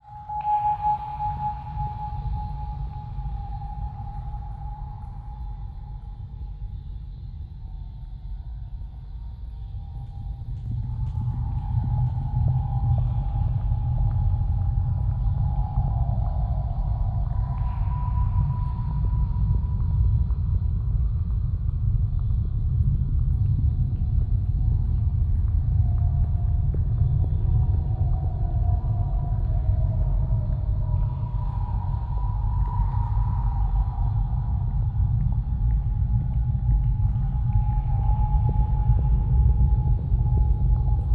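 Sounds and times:
submarine deep underwater effects: 0.2s - 41.1s
low liquid effects: 9.7s - 41.1s.

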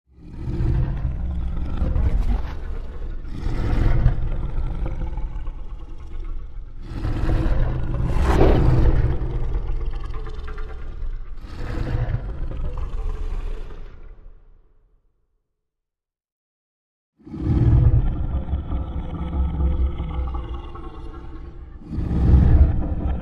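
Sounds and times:
lion roaring: 0.1s - 14.4s, 17.2s - 23.2s.

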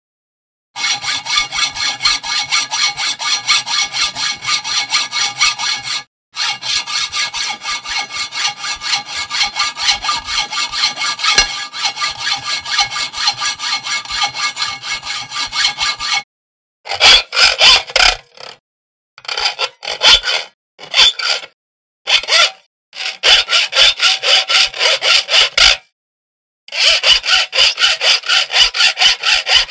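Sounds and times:
hacksaw cutting metal: 0.8s - 16.3s, 16.9s - 18.6s, 19.2s - 25.9s, 26.7s - 29.6s.

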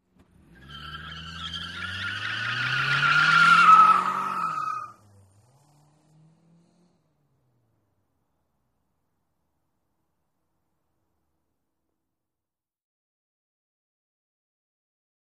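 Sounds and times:
sedan accelerating: 0.0s - 8.7s
sedan tire squealing: 0.1s - 7.6s.

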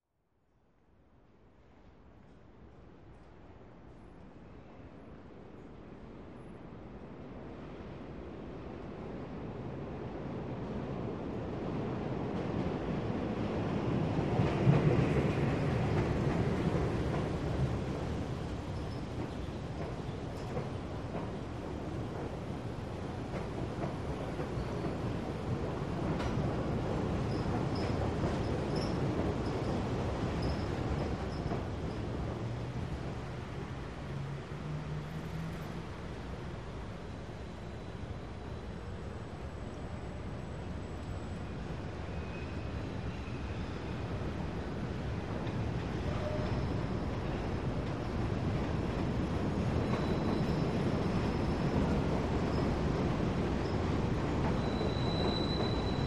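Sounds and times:
subway trains passing by: 1.2s - 56.0s.

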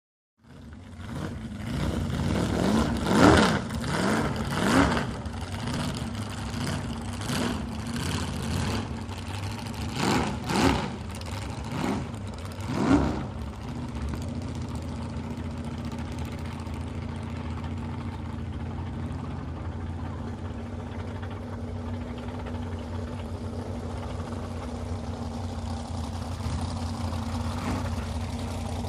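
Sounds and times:
drag boat racing engines: 0.4s - 28.8s.

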